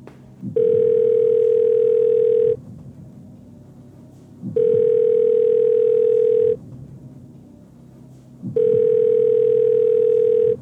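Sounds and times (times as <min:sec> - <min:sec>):
telephone ringing tone of unanswered call: 0:00.6 - 0:02.6, 0:04.6 - 0:06.6, 0:08.6 - 0:10.6.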